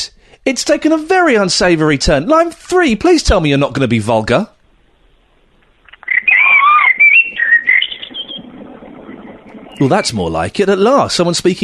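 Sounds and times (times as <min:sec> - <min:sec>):
speech: 0:00.5 - 0:04.6, 0:09.8 - 0:11.6
birds chirping and whistling: 0:04.7 - 0:10.6.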